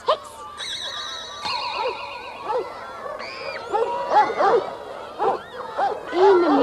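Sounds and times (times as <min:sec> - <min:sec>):
high shimmering ringing tone: 0:00.6 - 0:04.1
dogs barking and yipping: 0:01.6 - 0:06.6.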